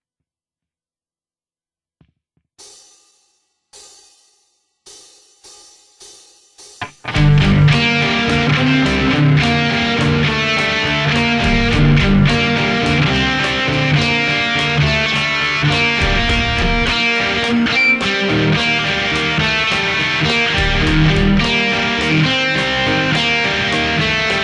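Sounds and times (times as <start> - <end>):
electric guitar through amp simulation software: 6.8 - 24.4.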